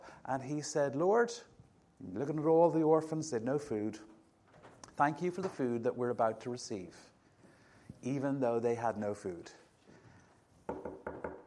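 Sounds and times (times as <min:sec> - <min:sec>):
speech: 0:00.3 - 0:04.1, 0:05.0 - 0:07.1, 0:08.0 - 0:09.6
knocks on a wooden door: 0:10.7 - 0:11.4.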